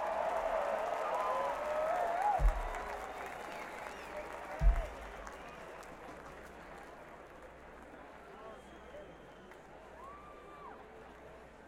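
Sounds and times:
cheers and whistles: 0:00.0 - 0:06.0, 0:08.2 - 0:10.9
audience applause for a bass player: 0:00.0 - 0:07.3
low thumps: 0:02.4 - 0:03.0, 0:04.6 - 0:05.2.

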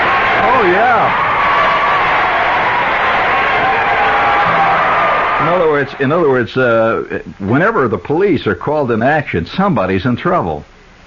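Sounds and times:
large crowd cheering with yells and whoops: 0:00.0 - 0:06.8
speech: 0:06.0 - 0:10.7.

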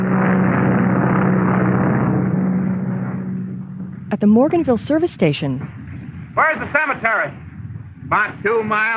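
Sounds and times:
small propeller plane droning overhead at night: 0:00.0 - 0:08.9
speech: 0:04.1 - 0:05.8, 0:06.4 - 0:07.4, 0:08.1 - 0:08.9.

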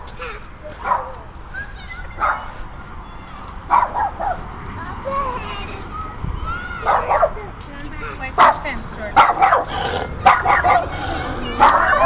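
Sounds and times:
small dog barking behind a fence: 0:00.8 - 0:01.1, 0:02.2 - 0:02.5, 0:03.7 - 0:04.4, 0:06.8 - 0:07.4, 0:08.4 - 0:11.0, 0:11.6 - 0:12.0.

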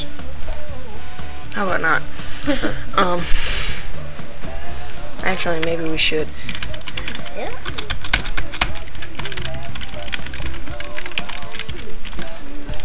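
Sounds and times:
speech: 0:01.6 - 0:03.6, 0:05.2 - 0:06.6
typing on a keyboard: 0:06.5 - 0:12.8.

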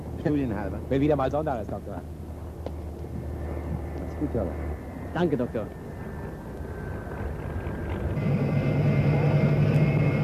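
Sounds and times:
speech: 0:00.2 - 0:02.2, 0:04.2 - 0:05.8
aircraft engine of the seventh squadron starting up: 0:03.2 - 0:10.2.

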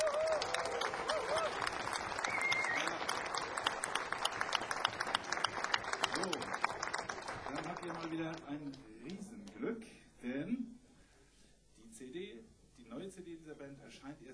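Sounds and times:
audience applauding in a small concert venue: 0:00.0 - 0:09.7.

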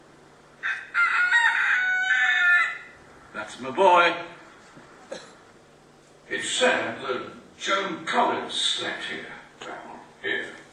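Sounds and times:
rooster crowing loudly in a garden: 0:00.6 - 0:03.0
speech: 0:03.6 - 0:04.4, 0:06.3 - 0:09.8.

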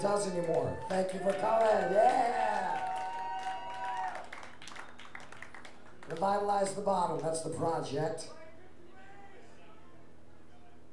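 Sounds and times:
speech: 0:00.0 - 0:02.7, 0:06.1 - 0:08.4
audience applause: 0:00.0 - 0:07.3.

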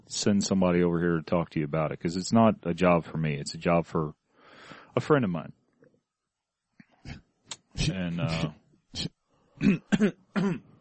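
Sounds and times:
speech: 0:00.1 - 0:04.2, 0:05.0 - 0:05.6, 0:07.8 - 0:10.7
throat clearing: 0:09.6 - 0:10.7.

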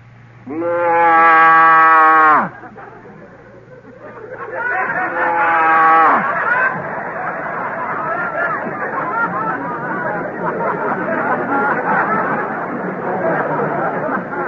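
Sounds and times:
human voice imitating a Holstein cow's moo: 0:00.4 - 0:02.5
laughter: 0:02.0 - 0:14.4.

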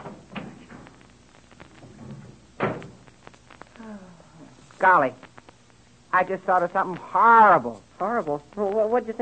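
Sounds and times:
door opening and shutting with a solid thump: 0:01.8 - 0:03.0
speech: 0:04.8 - 0:05.3, 0:06.1 - 0:09.1.

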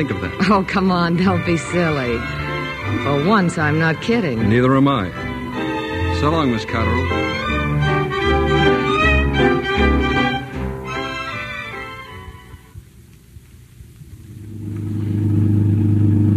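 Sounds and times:
speech: 0:00.0 - 0:05.2, 0:06.2 - 0:07.6
orchestral music: 0:00.0 - 0:12.8
car engine rumbling: 0:14.2 - 0:16.3.

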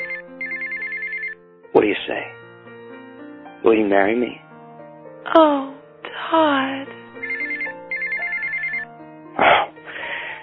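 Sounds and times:
phone ringtone chirping in electronic pulses: 0:00.0 - 0:01.4, 0:07.1 - 0:08.9
speech: 0:01.8 - 0:02.4, 0:03.6 - 0:04.4, 0:05.2 - 0:07.0.

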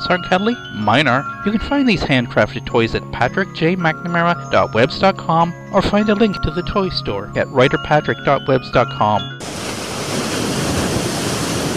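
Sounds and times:
speech: 0:00.0 - 0:10.2
ocean surf from a sound machine: 0:09.4 - 0:11.7.

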